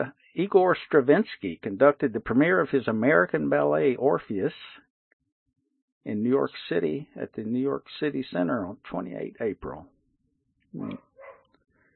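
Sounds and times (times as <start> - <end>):
speech: 0.0 - 4.8, 6.0 - 10.0, 10.7 - 11.1
dog barking: 10.8 - 11.5.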